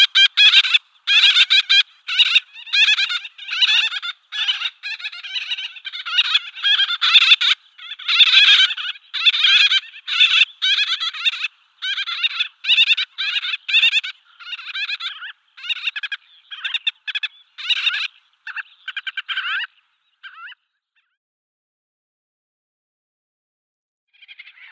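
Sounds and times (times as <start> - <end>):
Gull-billed tern giving harsh nasal harmonic calls: 0.0 - 19.7.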